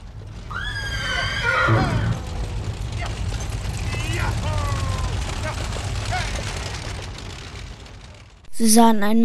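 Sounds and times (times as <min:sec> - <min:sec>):
horse-drawn cart and hooves rumbling: 0:00.0 - 0:08.5
horse whinnying: 0:00.5 - 0:05.2
speech: 0:01.7 - 0:02.0, 0:08.6 - 0:09.2.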